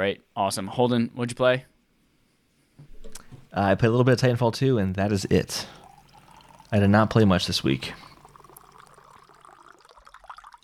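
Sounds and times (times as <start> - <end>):
speech: 0.0 - 1.7, 3.5 - 5.8, 6.7 - 8.1
water pouring into a glass: 5.2 - 10.6.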